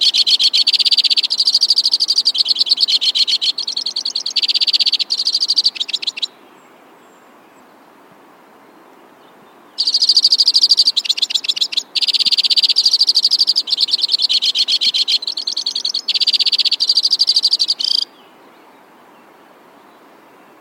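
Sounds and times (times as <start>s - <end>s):
White-winged crossbill trilling: 0.0s - 6.3s, 9.8s - 18.1s.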